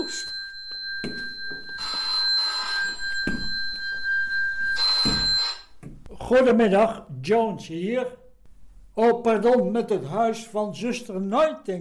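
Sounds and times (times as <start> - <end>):
telephone bell ringing: 0.0 - 5.8
speech: 6.3 - 8.2, 9.0 - 11.8.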